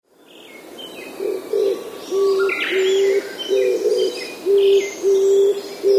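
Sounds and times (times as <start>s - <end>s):
Oriental turtle dove giving deep coos: 1.2s - 5.9s.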